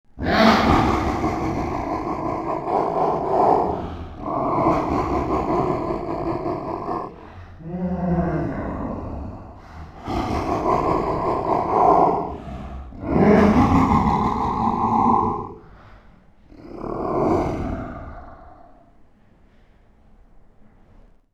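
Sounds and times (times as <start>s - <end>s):
deep villain laugh: 0.2s - 15.6s.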